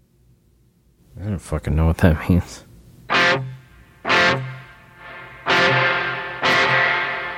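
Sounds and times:
speech: 0:01.2 - 0:02.7
distorted electric guitar strums through amplifier plate reverb on lead channel: 0:03.1 - 0:07.3.

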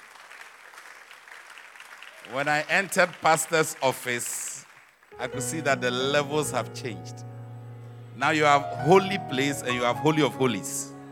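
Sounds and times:
audience applauding: 0:00.0 - 0:05.4
speech: 0:02.2 - 0:04.4, 0:05.2 - 0:07.3, 0:08.2 - 0:10.9.

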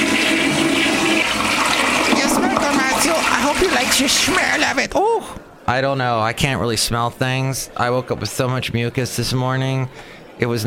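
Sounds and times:
toilet flushing: 0:00.0 - 0:04.9
speech: 0:03.6 - 0:10.6.

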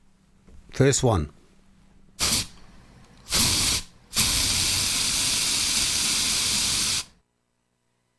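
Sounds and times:
speech: 0:00.8 - 0:01.4
aerosol can spraying: 0:02.2 - 0:02.6, 0:03.3 - 0:07.2.

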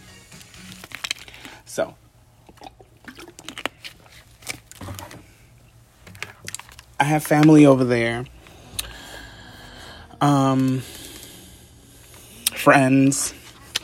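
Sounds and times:
low steady hum: 0:00.0 - 0:13.8
plastic water bottle crinkling and crunching: 0:00.4 - 0:01.6, 0:02.4 - 0:05.3, 0:06.0 - 0:07.7
speech: 0:01.8 - 0:02.0, 0:07.0 - 0:08.3, 0:10.2 - 0:11.0, 0:12.6 - 0:13.4.

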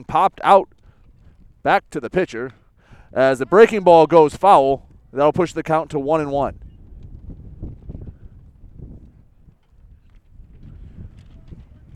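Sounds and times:
speech: 0:00.0 - 0:00.7, 0:01.6 - 0:06.6
strong wind buffeting the microphone at an outdoor baseball game: 0:00.0 - 0:11.9.

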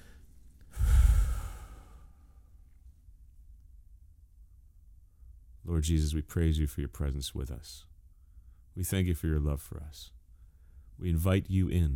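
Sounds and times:
deep breath during a group prayer: 0:00.0 - 0:02.6, 0:08.1 - 0:08.7, 0:10.3 - 0:11.0
speech: 0:05.7 - 0:07.9, 0:08.8 - 0:10.2, 0:11.0 - 0:11.9.

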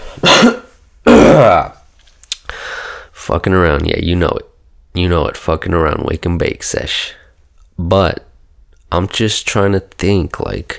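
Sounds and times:
person clearing throat: 0:00.0 - 0:01.8
speech: 0:01.4 - 0:01.8, 0:03.3 - 0:07.2, 0:07.8 - 0:08.3, 0:08.9 - 0:10.7.

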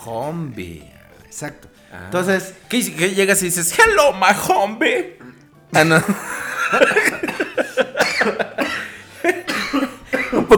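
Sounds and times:
speech: 0:00.0 - 0:07.4
coughing fits: 0:05.2 - 0:10.5
laughter: 0:05.9 - 0:09.5.

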